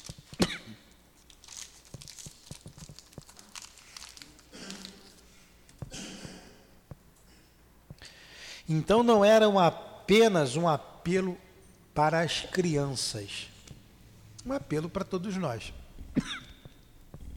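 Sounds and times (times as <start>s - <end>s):
plastic throat lozenge wrapper crinkling as it is opened: 0.0s - 0.4s, 1.2s - 5.4s
speech: 8.7s - 11.4s, 12.0s - 13.5s, 14.4s - 16.4s.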